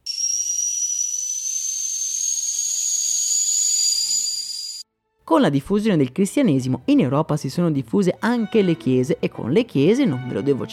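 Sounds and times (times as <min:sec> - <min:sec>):
loud hissing whistle: 0:00.0 - 0:04.8
speech: 0:05.3 - 0:10.7.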